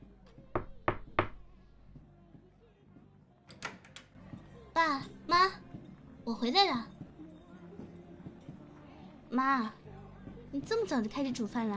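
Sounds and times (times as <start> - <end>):
firm knocks on a door: 0.4 - 1.6
speech: 4.8 - 5.6, 6.3 - 6.9, 9.4 - 9.8, 10.5 - 11.7.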